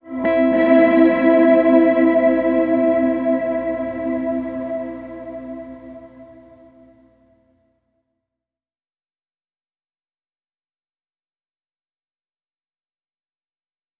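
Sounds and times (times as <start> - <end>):
soft musical sting in E: 0.0 - 7.0.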